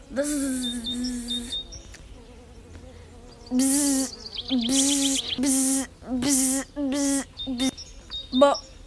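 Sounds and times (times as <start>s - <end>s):
bee buzzing: 0.0s - 7.8s.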